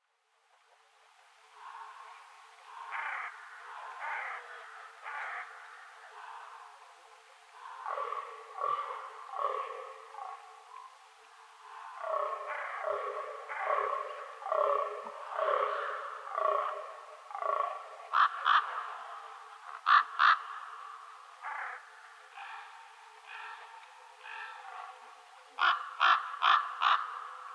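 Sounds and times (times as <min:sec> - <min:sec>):
common ravens in Schorfheide: 0:01.4 - 0:27.5.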